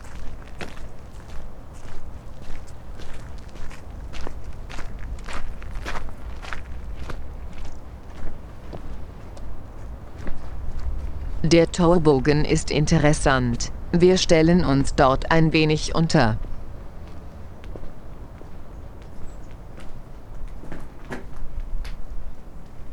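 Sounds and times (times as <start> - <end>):
footsteps walking toward an old ruin: 0.0 - 11.4, 16.4 - 20.7
speech: 11.5 - 16.5.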